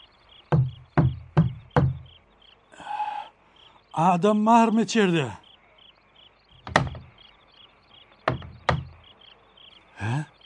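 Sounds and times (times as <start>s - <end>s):
firm knocking on a wooden door: 0.5s - 2.1s, 6.6s - 7.1s, 8.2s - 9.0s
speech: 4.0s - 5.4s.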